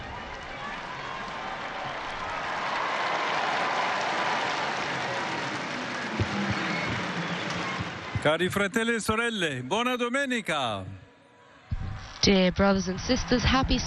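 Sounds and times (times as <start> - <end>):
large crowd awaiting the Pope's Sunday noon address applauding and cheering: 0.0 - 9.1
speech: 8.2 - 11.0, 12.2 - 13.8.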